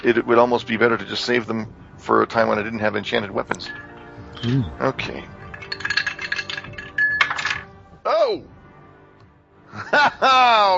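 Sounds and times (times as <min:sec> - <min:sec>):
speech: 0:00.0 - 0:05.8, 0:08.3 - 0:08.6, 0:09.7 - 0:10.7
dice clattering and rattling across a hard surface: 0:05.6 - 0:07.6
laughter: 0:09.7 - 0:10.7.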